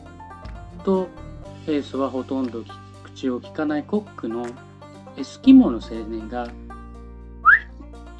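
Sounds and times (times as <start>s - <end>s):
speech: 0.8s - 6.6s
young Eskimo cook whistling a rising note: 7.4s - 7.7s.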